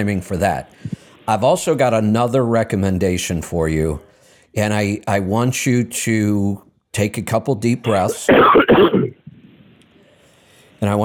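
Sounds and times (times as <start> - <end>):
speech: 0.0 - 9.2, 10.8 - 11.0
coughing: 7.9 - 9.3
throat clearing: 7.9 - 9.3.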